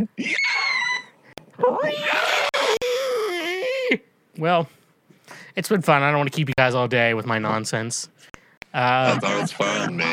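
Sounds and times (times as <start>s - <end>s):
person making a loud high screeching wail: 0.2s - 4.0s
speech: 3.9s - 4.8s, 5.6s - 10.1s
laughter: 8.8s - 10.1s.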